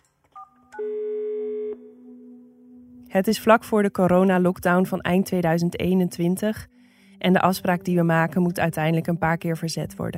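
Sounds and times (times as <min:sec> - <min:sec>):
steady telephone tone: 0:00.4 - 0:02.6
speech: 0:03.1 - 0:10.1.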